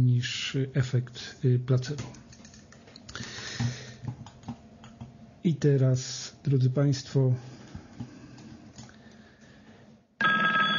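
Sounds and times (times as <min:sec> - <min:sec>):
noise: 0:00.0 - 0:10.7
speech: 0:00.2 - 0:02.4, 0:05.4 - 0:07.5
telephone ringing: 0:10.2 - 0:10.7.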